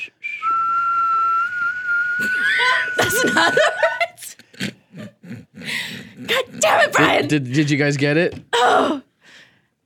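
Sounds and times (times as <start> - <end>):
person whistling a tune: 0.0 - 3.7
laughter: 2.4 - 6.5
speech: 7.0 - 9.0.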